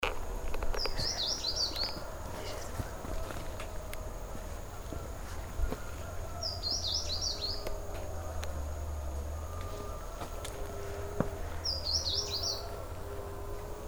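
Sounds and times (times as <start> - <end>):
low rumbling background noise: 0.0 - 13.8
blue seedeater calling high jittery phrases in Panama: 0.7 - 3.3, 6.1 - 7.9, 10.8 - 13.4.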